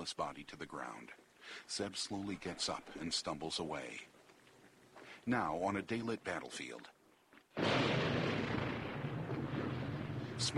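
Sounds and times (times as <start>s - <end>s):
speech: 0.0s - 4.1s, 5.2s - 7.0s, 10.4s - 10.5s
explosion tearing into the ground on a battlefield: 7.6s - 10.5s.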